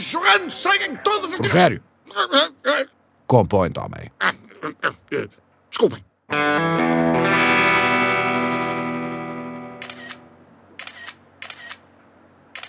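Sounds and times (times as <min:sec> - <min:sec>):
speech: 0:00.1 - 0:07.4
loud sustained buzzing chord: 0:06.3 - 0:10.4
camera shutter clicking: 0:09.8 - 0:10.2, 0:10.8 - 0:11.8.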